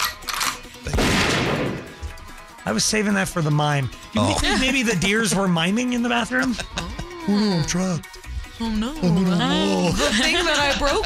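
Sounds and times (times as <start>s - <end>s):
crash-like bang used as a gunshot sound effect: 0.9s - 2.0s
speech: 2.7s - 11.0s
laughter: 4.2s - 5.4s, 6.3s - 7.5s, 9.0s - 11.0s.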